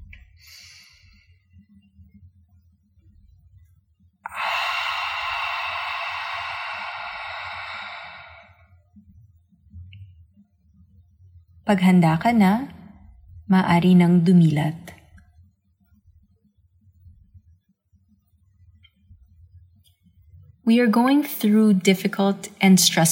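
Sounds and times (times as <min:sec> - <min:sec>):
open-mouthed exhale through the mouth in a guided breathing exercise: 0:04.3 - 0:08.6
speech: 0:11.7 - 0:12.8, 0:13.5 - 0:14.9, 0:20.7 - 0:23.1.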